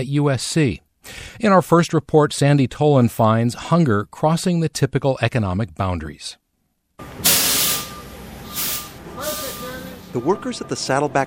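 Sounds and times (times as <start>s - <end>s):
speech: 0.0s - 6.4s, 10.1s - 11.2s
semi-truck air brakes hissing while backing up: 7.0s - 10.4s
semi-truck low engine rumble: 7.0s - 11.2s
faint steady tone: 7.4s - 11.2s.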